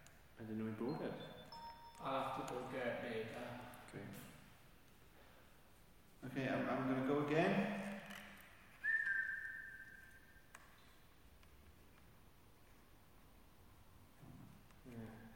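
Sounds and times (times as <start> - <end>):
speech: 0.4 - 1.4, 2.0 - 4.3, 6.2 - 7.9
person whistling a clear steady note: 8.8 - 10.4.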